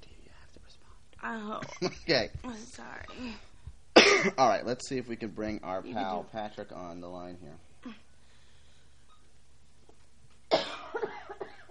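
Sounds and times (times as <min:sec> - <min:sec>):
speech: 0:01.2 - 0:03.5, 0:04.2 - 0:08.0
person coughing with throaty hacks: 0:04.0 - 0:04.5, 0:10.5 - 0:11.7.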